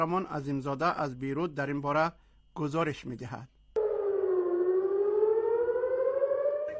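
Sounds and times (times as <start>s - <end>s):
speech: 0.0s - 3.6s
air-raid warning siren wailing: 3.8s - 6.7s.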